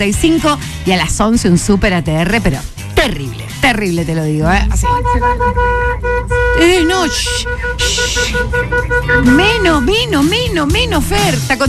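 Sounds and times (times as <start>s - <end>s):
speech: 0.0s - 11.6s
car horn honking in short repeated toots: 4.4s - 11.4s.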